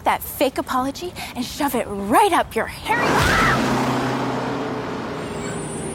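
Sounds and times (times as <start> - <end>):
speech: 0.1 - 3.7
large bus engine rumbling: 1.0 - 5.9
thin high squeal of bus brakes: 2.9 - 5.9.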